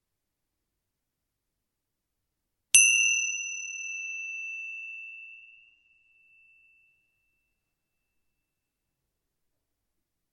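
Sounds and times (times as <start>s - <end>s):
small meditation bell ringing: 2.8s - 7.3s.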